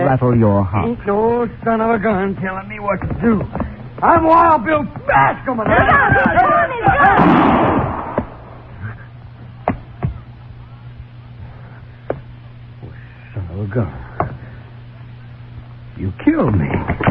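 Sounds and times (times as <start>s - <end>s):
speech: 0.1s - 7.8s, 13.6s - 14.0s, 16.0s - 17.0s
gunshot cracks in a Western film scene: 7.2s - 8.4s.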